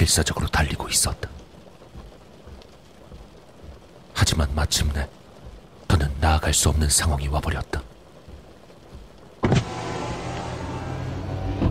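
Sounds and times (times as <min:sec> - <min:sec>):
speech: 0:00.0 - 0:01.4, 0:04.2 - 0:05.2, 0:06.0 - 0:07.9
power car window electric motor whirring downward: 0:09.4 - 0:11.7.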